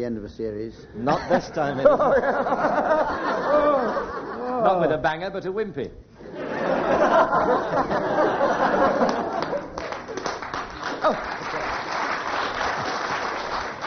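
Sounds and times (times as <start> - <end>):
speech: 0.0 - 6.0, 6.9 - 9.2
audience laughter: 1.1 - 4.8, 6.2 - 9.8
audience applause: 7.6 - 13.8.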